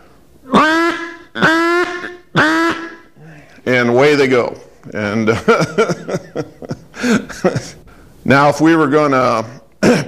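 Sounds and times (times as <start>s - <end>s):
harsh high buzzy duck alarm calls: 0.5s - 3.2s
speech: 4.1s - 6.3s, 7.4s - 10.0s
laughter: 5.0s - 7.8s.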